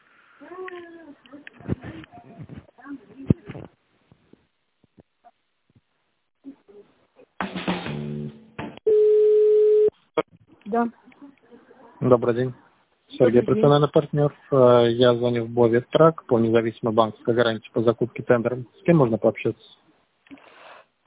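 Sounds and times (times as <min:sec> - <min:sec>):
speech: 0:00.4 - 0:01.7, 0:10.7 - 0:11.0, 0:12.0 - 0:12.6, 0:13.2 - 0:19.8
telephone line tone while a call to a company is transferred: 0:08.9 - 0:09.9.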